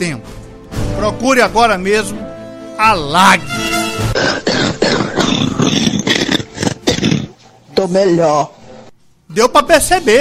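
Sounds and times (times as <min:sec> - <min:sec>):
speech: 0:00.0 - 0:00.3, 0:01.0 - 0:04.4, 0:07.8 - 0:08.6, 0:09.3 - 0:10.1
person coughing harshly: 0:04.1 - 0:07.4.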